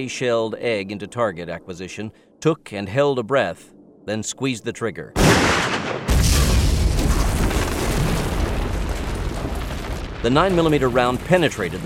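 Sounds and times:
speech: 0.0s - 6.3s, 10.2s - 11.8s
grenade explosion boom: 5.2s - 11.8s
roaring rumble of debris: 5.2s - 11.8s.

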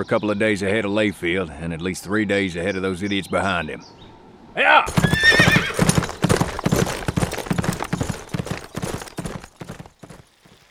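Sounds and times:
speech: 0.0s - 5.9s
horse whinny: 4.9s - 6.4s
horses' hooves clip-clopping as horses approach: 4.9s - 10.6s.

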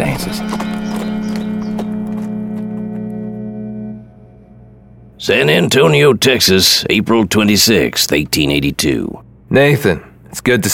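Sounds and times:
saddled horse hooves clip-clopping: 0.0s - 3.2s
steady low hum: 0.0s - 10.7s
speech: 5.3s - 10.7s.

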